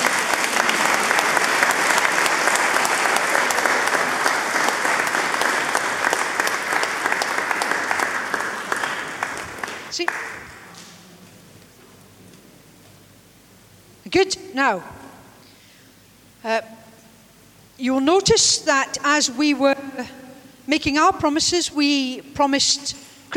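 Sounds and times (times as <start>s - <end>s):
large crowd applauding in a roomy indoor space: 0.0s - 11.0s
speech: 14.2s - 15.0s, 16.4s - 16.7s, 17.8s - 23.3s.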